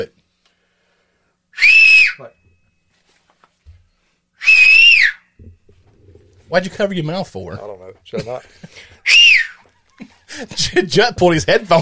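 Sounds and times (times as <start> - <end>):
person whistling loudly: 1.5 - 2.4, 4.4 - 5.4, 9.0 - 9.6
speech: 1.6 - 2.4, 6.5 - 9.2, 10.0 - 11.8.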